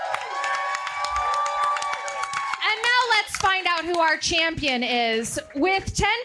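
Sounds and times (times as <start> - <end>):
live audience cheering and whooping: 0.0 - 3.4
live audience clapping: 0.0 - 5.7
speech: 3.2 - 6.2.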